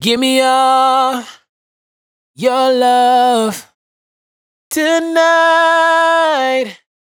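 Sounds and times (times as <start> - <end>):
dry raw vocal hook in E minor: 0.0 - 1.5, 2.4 - 3.8, 4.7 - 6.9.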